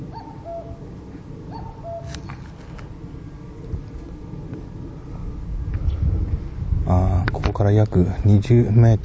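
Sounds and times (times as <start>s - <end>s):
cuckoo calling while perched on a TV antenna: 0.0s - 5.4s
steady low rumble of noise: 0.0s - 9.0s
speech: 6.9s - 9.0s.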